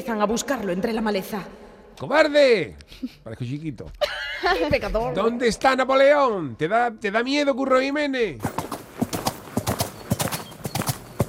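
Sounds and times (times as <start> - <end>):
speech: 0.0 - 8.6
laughter: 4.0 - 5.0
horse hooves galloping away: 8.4 - 11.2.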